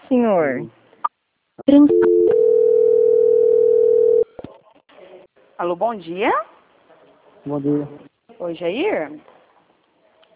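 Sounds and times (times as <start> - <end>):
speech: 0.1 - 0.8, 1.6 - 2.4, 5.6 - 6.5, 7.4 - 9.4
steady telephone tone while a call is being transferred: 1.9 - 4.3.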